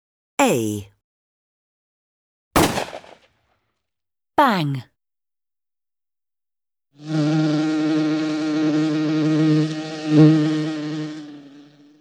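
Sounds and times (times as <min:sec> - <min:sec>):
speech: 0:00.4 - 0:00.9, 0:04.4 - 0:04.9, 0:07.0 - 0:07.7
flying insect buzzing: 0:07.0 - 0:11.9.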